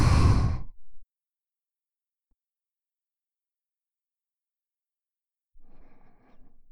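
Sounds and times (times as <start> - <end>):
person exhaling during a breathing exercise: 0.0 - 0.8
person inhaling during a breathing exercise: 0.0 - 0.9.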